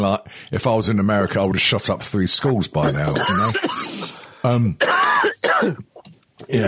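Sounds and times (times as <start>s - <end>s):
speech: 0.0s - 5.9s
man clearing his throat: 2.8s - 4.0s, 4.8s - 6.0s
man coughing after inhaling coffee: 2.8s - 4.2s, 4.8s - 6.0s.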